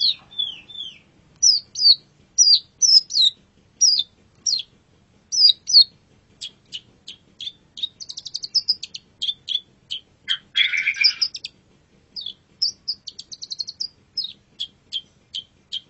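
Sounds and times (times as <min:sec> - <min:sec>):
Long-tailed shrike song: 0:00.0 - 0:04.7, 0:05.3 - 0:11.6, 0:12.2 - 0:15.8
Long-tailed shrike harsh rasping burst: 0:09.9 - 0:11.4.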